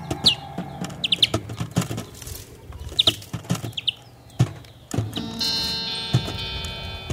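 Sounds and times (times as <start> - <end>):
wild greenfinches chirping, parent feeding young: 0.0 - 7.1.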